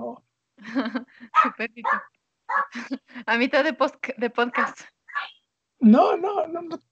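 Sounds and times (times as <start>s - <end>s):
dog barking: 1.3s - 2.8s, 4.6s - 5.3s
dog whimpering: 1.4s - 2.8s
speech: 1.6s - 5.0s, 5.8s - 6.9s.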